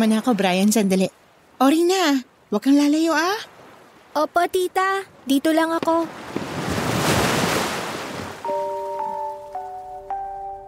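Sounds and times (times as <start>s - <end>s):
speech: 0.0s - 3.5s, 4.2s - 6.3s
ocean wave rushing up onto the shore: 5.8s - 9.4s
soft sustained musical tones: 8.4s - 10.6s.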